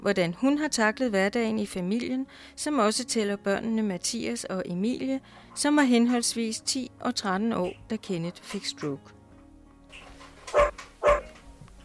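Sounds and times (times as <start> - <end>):
speech: 0.0 - 9.2
dog barking: 10.5 - 11.4.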